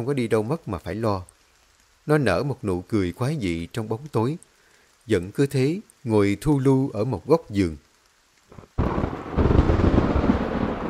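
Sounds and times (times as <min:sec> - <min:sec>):
speech: 0:00.0 - 0:01.3, 0:02.0 - 0:04.5, 0:05.1 - 0:07.8
thunder from a storm at night: 0:08.5 - 0:10.8.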